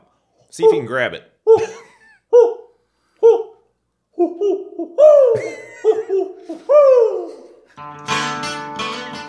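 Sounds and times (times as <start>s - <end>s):
speech: 0.5s - 1.8s
owl hooting: 2.3s - 3.6s, 4.2s - 7.6s.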